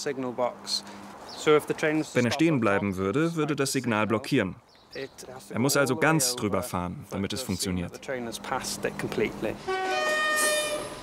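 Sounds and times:
speech: 0.0s - 10.1s
train horn blast arriving at station: 9.6s - 11.0s.

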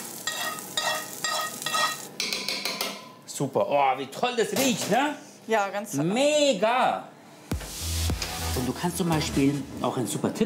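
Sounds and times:
meat with roasted onions and parsley sizzling in a pan: 0.0s - 2.2s
speech: 3.4s - 7.1s, 8.6s - 10.4s.

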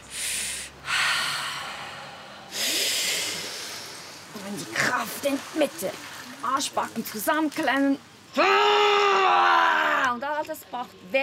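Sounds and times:
person breathing in and out to control breathing and reduce stress: 0.0s - 4.2s
speech: 5.0s - 11.2s.

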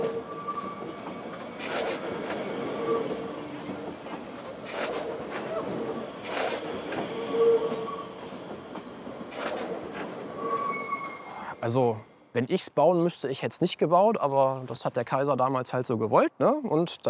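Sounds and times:
train rumbling on tracks: 0.0s - 12.4s
speech: 11.7s - 17.0s.

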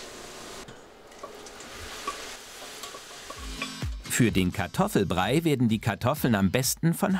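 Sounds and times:
minced lamb searing in a hot pan: 0.0s - 4.1s
speech: 4.2s - 7.1s.

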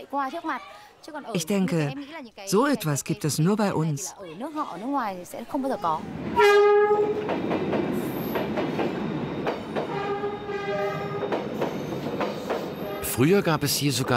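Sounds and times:
speech: 0.1s - 8.2s, 13.2s - 14.1s
train rumbling past on street tracks: 5.9s - 14.1s
train horn blaring: 6.4s - 7.3s, 9.8s - 11.4s, 12.7s - 13.3s.

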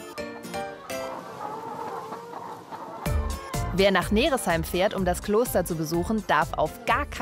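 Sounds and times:
chickens clucking and squawking on a monastery farm: 0.1s - 4.9s
speech: 3.7s - 7.1s.

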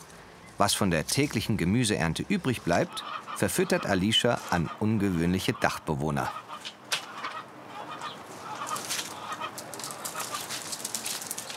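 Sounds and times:
speech: 0.6s - 6.4s
Appenzeller Spitzhauben chickens clucking: 2.2s - 11.0s.

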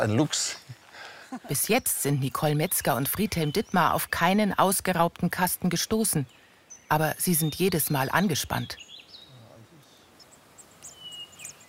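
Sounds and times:
speech: 0.0s - 0.7s, 1.5s - 8.9s
hiss: 0.0s - 11.6s
hatched baby birds peeping inside a nest box: 1.5s - 11.6s.

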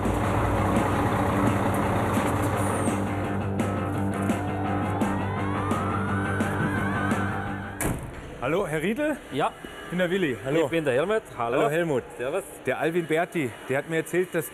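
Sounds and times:
newly finished chimney-red heavy truck engine rumbling at low speed: 0.0s - 9.9s
speech: 8.5s - 14.5s.

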